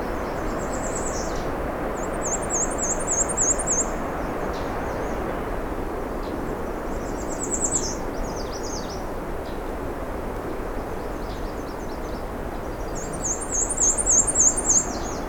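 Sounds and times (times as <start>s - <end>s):
outdoor hiss: 0.0s - 15.2s
black and white warbler singing: 0.1s - 5.2s, 6.9s - 9.6s, 10.8s - 15.2s.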